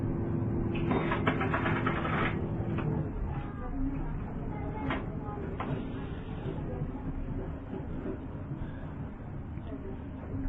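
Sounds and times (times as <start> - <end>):
boat engine droning during a boat ride through Melbourne Harbour: 0.0 - 10.4
clanks and rattles on a boat: 0.7 - 3.0
faint voices on a boat: 1.0 - 10.4.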